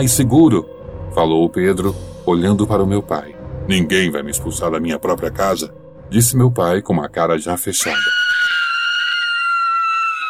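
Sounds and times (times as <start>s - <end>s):
speech: 0.0s - 8.6s
high-pitched scream from a kitchen: 7.8s - 10.2s.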